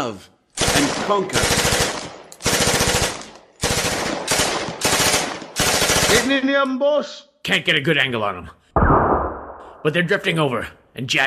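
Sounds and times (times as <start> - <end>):
speech: 0.0 - 1.8, 6.1 - 8.6, 9.8 - 11.2
automatic gunfire from deputies shooting: 0.6 - 6.4.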